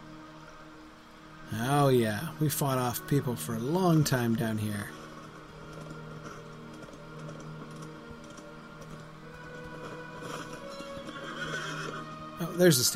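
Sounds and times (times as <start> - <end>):
busy droning background: 0.0 - 12.9
speech: 1.5 - 5.0, 12.6 - 12.9
war steed hooves clip-clopping: 3.8 - 12.9
war steed snorting and whinnying: 9.8 - 12.2.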